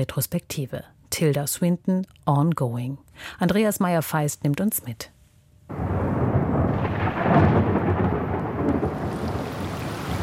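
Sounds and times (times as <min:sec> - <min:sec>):
speech: 0:00.0 - 0:05.1
heavy rain drumming close by on a hard surface: 0:05.7 - 0:10.2
thunderstorm rumbling: 0:05.7 - 0:10.2.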